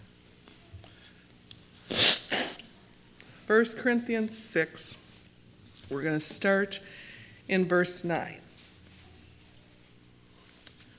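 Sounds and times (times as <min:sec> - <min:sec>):
person blowing their nose: 0:01.8 - 0:02.6
speech: 0:03.5 - 0:05.1, 0:05.9 - 0:08.4.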